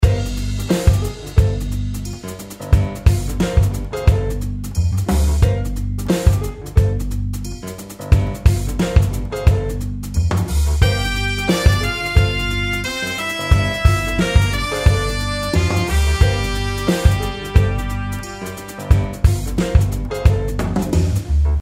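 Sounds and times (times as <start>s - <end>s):
speakeasy intro background music: 0.0s - 21.6s.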